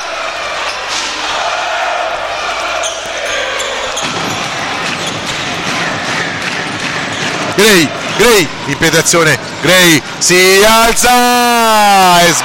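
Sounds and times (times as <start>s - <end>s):
arena crowd roaring: 0.0s - 8.6s, 11.1s - 12.4s
basketball dribbled on a hardwood court during a game: 4.0s - 8.2s
speech: 7.6s - 12.4s.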